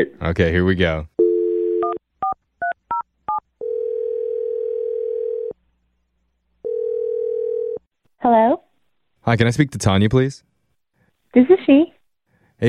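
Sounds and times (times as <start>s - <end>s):
speech: 0.0s - 1.1s, 8.2s - 8.6s, 9.2s - 10.5s, 11.3s - 12.0s
telephone dial tone: 1.2s - 2.0s, 3.6s - 5.6s, 6.6s - 7.8s.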